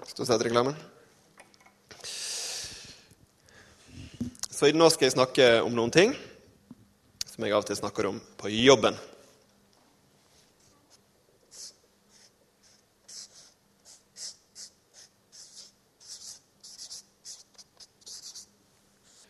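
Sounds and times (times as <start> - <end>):
faint steady hum: 0.0 - 19.2
speech: 0.1 - 1.0, 4.6 - 6.3, 7.4 - 9.1
blue pen scratching on paper: 11.5 - 19.2.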